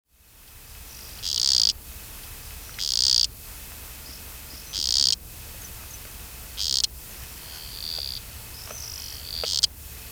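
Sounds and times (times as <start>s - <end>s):
Blommersia kely frog calling: 0.4s - 10.1s.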